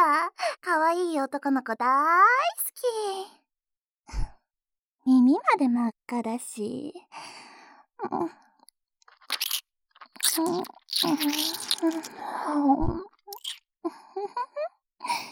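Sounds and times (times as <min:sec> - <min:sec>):
speech: 0:00.9 - 0:03.4, 0:05.0 - 0:08.4, 0:10.3 - 0:15.3
breaths: 0:07.1 - 0:07.9, 0:15.0 - 0:15.3
wet mouth sounds of nibbling and chewing at the ear: 0:09.1 - 0:12.2, 0:13.3 - 0:13.6.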